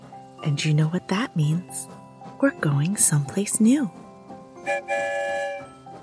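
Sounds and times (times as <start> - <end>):
speech: 0.4 - 4.0, 4.6 - 5.6
train whistle blasts: 4.6 - 5.8.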